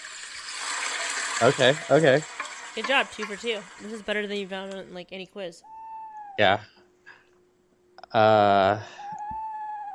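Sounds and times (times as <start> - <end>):
speech: 1.4 - 5.8, 6.4 - 6.8, 8.1 - 9.0
owl hooting: 5.6 - 6.5, 8.9 - 9.9.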